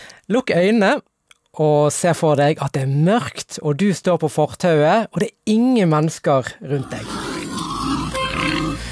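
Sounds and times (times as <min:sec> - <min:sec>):
speech: 0:00.3 - 0:07.2
herd of black wild boars grunting and snuffling: 0:06.8 - 0:08.9.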